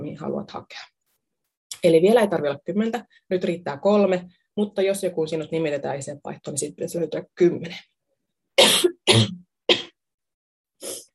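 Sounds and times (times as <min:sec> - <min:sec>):
speech: 0:00.1 - 0:00.9, 0:01.8 - 0:07.9, 0:08.6 - 0:09.8
person coughing: 0:08.6 - 0:10.0.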